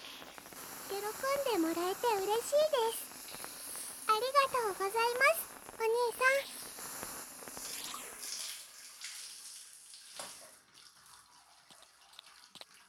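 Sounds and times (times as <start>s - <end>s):
speech: 1.0s - 3.0s, 4.2s - 6.5s
water splashes and drips: 8.2s - 12.8s.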